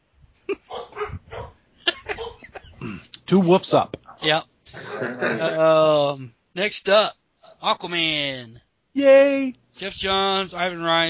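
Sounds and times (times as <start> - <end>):
dogs yipping and whimpering: 0.6 - 2.6
laughter: 1.8 - 2.9, 4.7 - 5.8
speech: 3.3 - 11.0.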